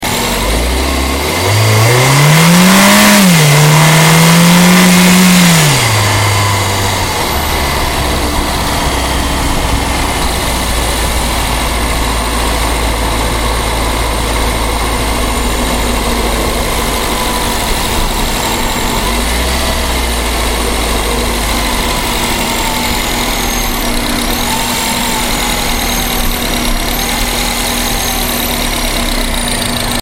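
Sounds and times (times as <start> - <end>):
Cooper S car accelerating outside: 0.0 - 29.9.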